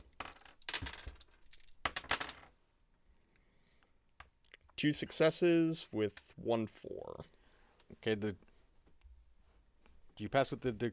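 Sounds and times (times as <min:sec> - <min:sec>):
several small dice clattering across a hard surface: 0:00.0 - 0:02.6
speech: 0:04.8 - 0:07.4, 0:08.0 - 0:08.5, 0:10.2 - 0:10.9.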